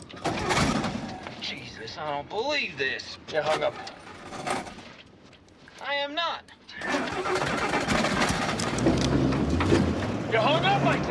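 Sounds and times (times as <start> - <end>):
speech: 1.8 - 4.6, 5.9 - 8.0, 9.7 - 11.0
stuck truck engine revving: 7.0 - 11.0.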